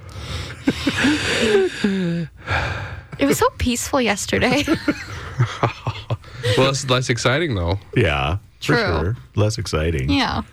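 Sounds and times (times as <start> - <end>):
heavy raspy breathing of a sick person: 0.0 - 3.2, 6.2 - 6.8
voiced catches and gasps: 0.0 - 3.3
laughter: 0.6 - 1.7, 4.3 - 7.1
speech: 1.0 - 2.4, 3.2 - 5.8, 6.6 - 10.5.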